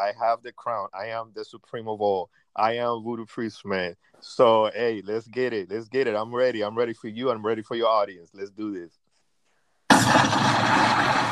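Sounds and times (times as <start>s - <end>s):
speech: 0.0s - 9.0s, 10.0s - 11.3s
bomb explosion sound effect: 9.9s - 11.3s.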